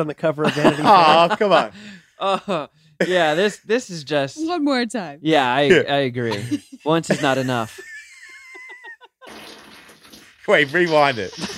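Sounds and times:
speech: 0:00.0 - 0:07.9, 0:10.5 - 0:11.5
laughter: 0:00.4 - 0:03.7, 0:05.7 - 0:09.4, 0:10.7 - 0:11.5
drawn-out sputtering fart: 0:09.2 - 0:11.5.

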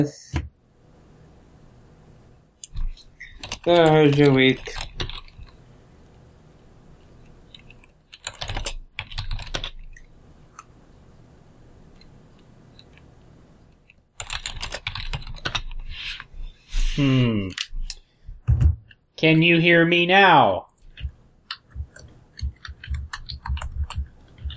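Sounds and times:
speech: 0:00.0 - 0:00.2, 0:03.6 - 0:05.1, 0:17.0 - 0:17.6, 0:19.2 - 0:20.7
typing on a computer keyboard during an online call: 0:02.6 - 0:05.6, 0:07.2 - 0:10.7, 0:12.0 - 0:13.1, 0:13.8 - 0:15.8, 0:20.8 - 0:24.5.

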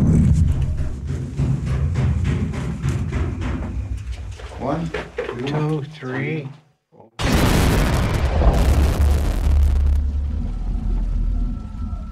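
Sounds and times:
steady rumble: 0:00.2 - 0:05.2, 0:08.2 - 0:12.0
explosive blasting in a mine: 0:07.2 - 0:10.4.

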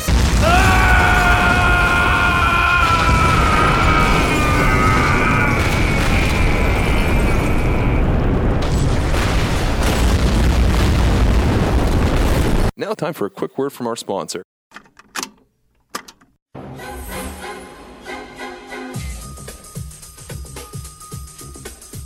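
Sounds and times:
grenade explosion in a video game: 0:00.1 - 0:12.7
speech: 0:13.0 - 0:15.0.

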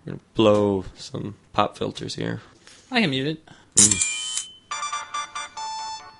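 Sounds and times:
speech: 0:00.1 - 0:04.2
MIDI-style electronic startup jingle of an LG device turning on: 0:04.7 - 0:06.1.

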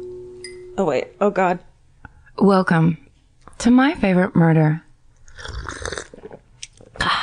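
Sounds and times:
speech: 0:00.8 - 0:01.7, 0:02.4 - 0:03.0, 0:03.6 - 0:04.8, 0:05.4 - 0:05.7
person sipping coffee: 0:05.2 - 0:06.4
person swallowing coffee: 0:05.3 - 0:06.4.

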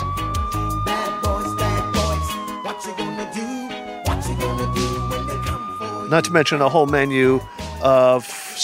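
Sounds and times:
loud driving music with heavy rhythmic bass beats: 0:00.0 - 0:06.1
police car siren wailing: 0:00.0 - 0:08.6
speech: 0:06.1 - 0:08.6.

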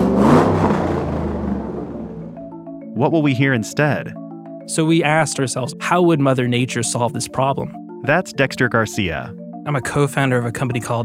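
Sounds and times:
combustion car engine revving: 0:00.0 - 0:02.6
speech: 0:03.0 - 0:11.0.

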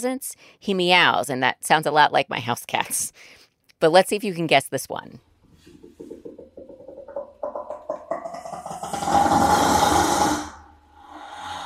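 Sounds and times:
speech: 0:00.0 - 0:05.3
brown hyena pulsed grunting vocalization: 0:08.8 - 0:11.6.

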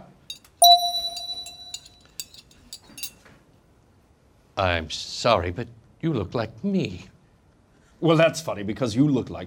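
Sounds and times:
light scattered clinks and taps: 0:00.3 - 0:03.4
single bright bell struck: 0:00.6 - 0:02.4
speech: 0:04.6 - 0:07.1, 0:08.0 - 0:09.4.

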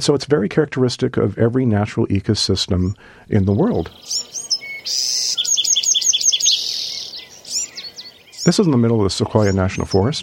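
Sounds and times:
speech: 0:00.0 - 0:05.1, 0:08.4 - 0:10.2
forest birds singing: 0:02.8 - 0:10.2
faint steady background of insects: 0:03.3 - 0:10.2.

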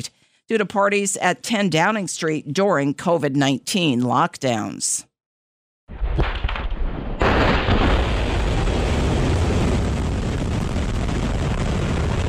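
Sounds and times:
speech: 0:00.5 - 0:05.1
explosions from Russian airstrikes on Kyiv: 0:05.9 - 0:12.2.

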